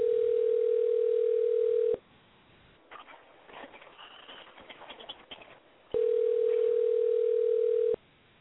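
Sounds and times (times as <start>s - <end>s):
phone line ringback tones through the handset: 0.0s - 2.0s, 6.0s - 8.0s.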